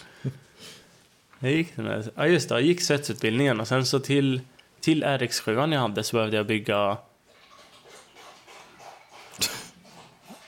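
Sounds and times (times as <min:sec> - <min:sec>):
speech: 0:00.2 - 0:00.4, 0:01.4 - 0:07.1
dog lapping drinking water: 0:07.2 - 0:10.4.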